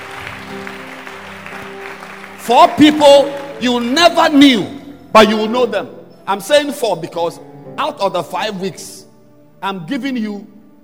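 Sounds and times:
congregation clapping in rhythm: 0.0s - 4.0s
speech: 2.4s - 9.0s, 9.6s - 10.5s.

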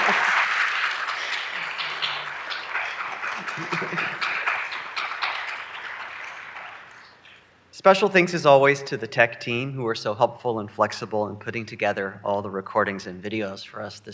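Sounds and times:
laughter: 0.0s - 4.7s
room full of people applauding in a church sanctuary: 0.0s - 7.3s
speech: 7.8s - 14.1s.

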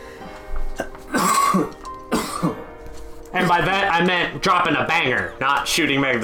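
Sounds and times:
harsh raspy coughs with throat-clearing: 0.8s - 2.7s
speech: 1.6s - 1.8s, 2.4s - 2.6s, 3.4s - 6.2s.

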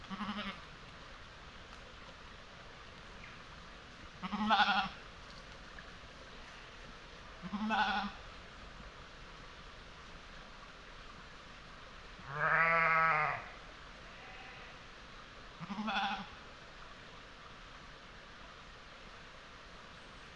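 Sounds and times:
sheep bleating in an upland meadow: 0.1s - 0.6s, 4.2s - 5.0s, 7.4s - 8.2s, 12.3s - 13.5s, 14.1s - 14.8s, 15.6s - 16.3s.

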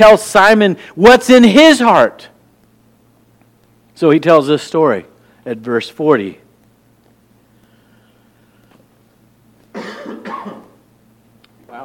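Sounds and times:
speech: 0.0s - 2.3s, 4.0s - 6.4s
harsh coughs: 9.7s - 10.8s.

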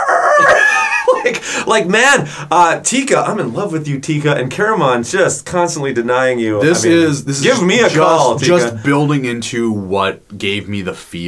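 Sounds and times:
rooster crowing: 0.0s - 1.1s
laughter: 0.3s - 2.5s
speech: 1.2s - 11.2s.

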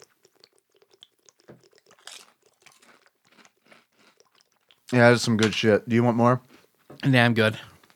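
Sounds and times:
chips being chewed: 0.0s - 5.0s
speech: 4.9s - 7.7s.

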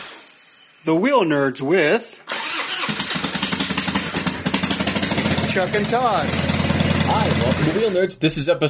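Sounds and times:
speech: 0.9s - 2.3s, 5.5s - 6.5s, 7.1s - 8.6s
voice imitating a revving motorcycle engine with the mouth: 3.1s - 7.9s.

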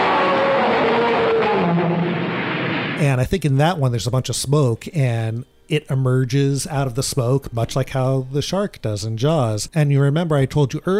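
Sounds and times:
dinosaur roar sound effect: 0.0s - 3.0s
speech: 3.0s - 10.9s.

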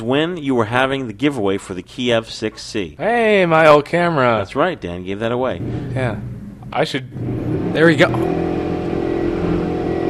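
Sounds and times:
speech: 0.0s - 8.6s
loud engine revving outside: 5.4s - 10.0s.

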